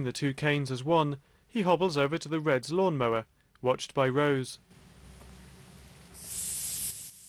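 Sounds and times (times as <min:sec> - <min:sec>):
speech: 0:00.0 - 0:04.6
WD-40 lubricant spray can spraying a mower tow bar ball: 0:05.8 - 0:07.2.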